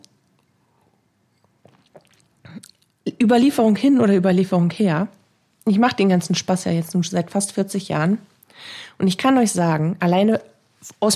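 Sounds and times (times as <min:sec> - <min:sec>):
wet mouth sounds: 0:00.0 - 0:03.1
person sipping water: 0:00.1 - 0:03.0
speech: 0:03.2 - 0:11.1.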